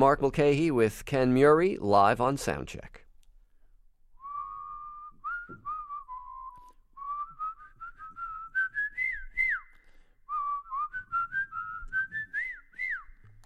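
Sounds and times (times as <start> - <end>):
speech: 0.0 - 3.0
person whistling a lilting melody: 4.2 - 13.3.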